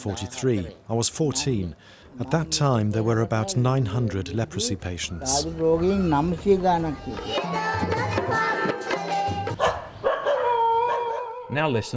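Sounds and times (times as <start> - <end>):
speech: 0.0 - 8.6, 11.5 - 11.9
pack of dogs barking and yelping at a leprosy asylum in Hendla: 9.6 - 11.5.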